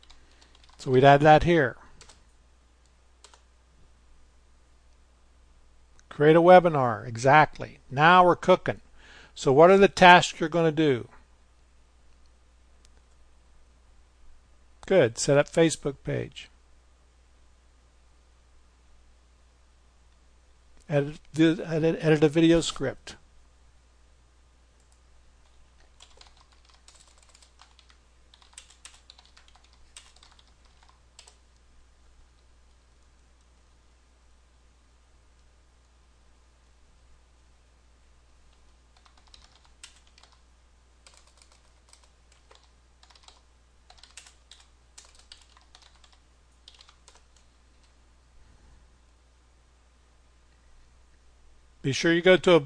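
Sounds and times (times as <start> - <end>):
typing on a computer keyboard: 0.0 - 1.0, 2.0 - 2.2, 3.2 - 3.4, 24.8 - 31.4, 38.5 - 40.4, 41.0 - 47.9
speech: 0.8 - 1.8, 6.2 - 8.8, 9.4 - 11.2, 14.9 - 16.5, 20.9 - 23.2, 51.9 - 52.6.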